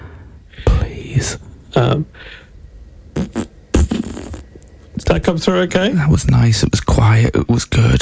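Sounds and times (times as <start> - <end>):
speech: 1.2 - 2.5, 5.1 - 8.0
person blowing raspberries with the mouth to imitate a fart: 3.1 - 4.7.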